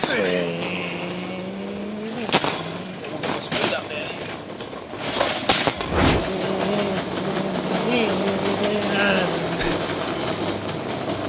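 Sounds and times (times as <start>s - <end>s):
shopping trolley clattering in a supermarket: 0.0s - 11.2s
man imitating a car engine while pushing a shopping trolley in a supermarket: 0.2s - 3.2s, 5.8s - 10.0s.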